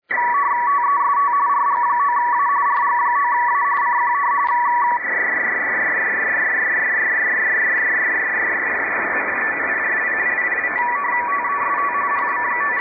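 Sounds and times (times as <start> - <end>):
RTTY radioteletype signal: 0.0 - 12.8.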